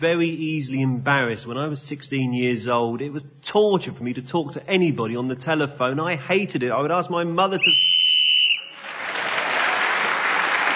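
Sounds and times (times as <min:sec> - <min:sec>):
speech: 0:00.0 - 0:07.9
shrill whistle blown to end a round of a panel game: 0:07.6 - 0:08.8
loud sustained audience applause: 0:08.5 - 0:10.7.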